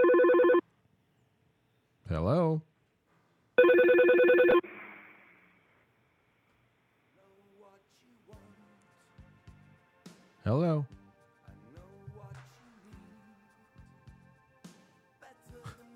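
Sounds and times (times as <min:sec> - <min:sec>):
phone call ringback tone: 0:00.0 - 0:00.6, 0:03.6 - 0:04.7
speech: 0:02.2 - 0:02.7, 0:10.5 - 0:11.0.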